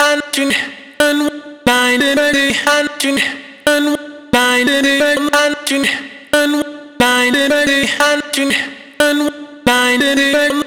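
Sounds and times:
vocal chop: 0.0s - 10.6s.

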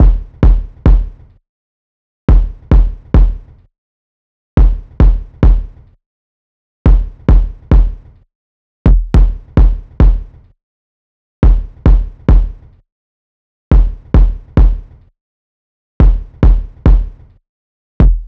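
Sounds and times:
kick drum loop: 0.0s - 1.2s, 2.3s - 3.4s, 4.6s - 5.7s, 6.9s - 8.0s, 8.9s - 10.3s, 11.4s - 12.5s, 13.7s - 14.8s, 16.0s - 17.2s, 18.0s - 18.2s.

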